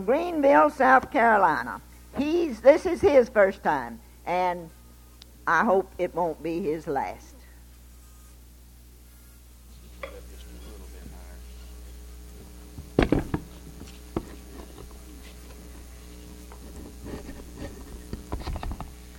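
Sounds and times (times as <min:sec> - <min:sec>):
speech: 0:00.0 - 0:04.8, 0:05.5 - 0:07.3
microphone stands being adjusted with metallic clunks: 0:12.8 - 0:14.9.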